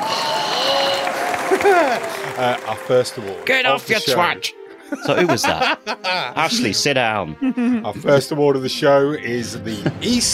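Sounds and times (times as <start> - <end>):
laughter: 0.0 - 2.8, 4.8 - 8.4, 9.5 - 10.3
crowd cheering and applause: 0.0 - 4.2
speech: 1.6 - 10.3.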